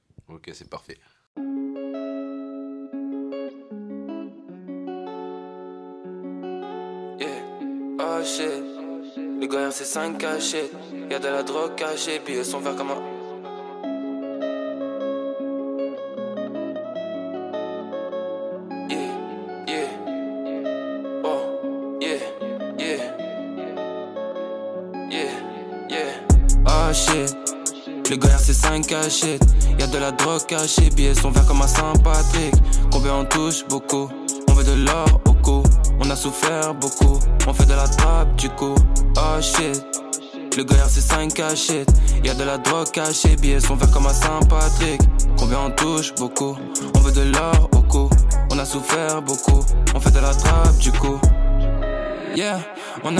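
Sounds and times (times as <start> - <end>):
speech: 0.3 - 1.5, 9.6 - 13.2, 28.9 - 40.0, 40.6 - 51.4, 52.4 - 53.1
rap track with rapped vocal over a steady beat: 7.2 - 13.5, 18.9 - 20.3, 21.2 - 23.4, 25.1 - 53.1.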